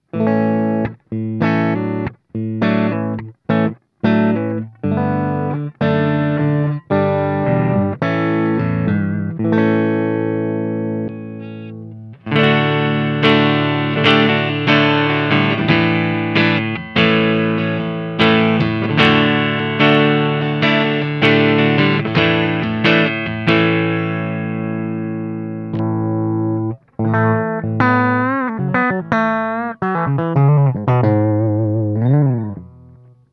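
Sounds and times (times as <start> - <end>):
Carl Martin Ampster Green guitar amplifier low gain: 0.0 - 33.3.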